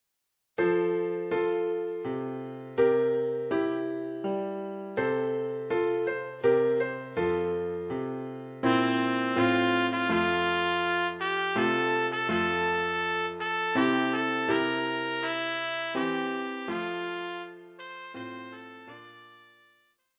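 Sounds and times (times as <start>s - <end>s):
piano: 0.6s - 19.8s
trumpet: 8.6s - 19.9s.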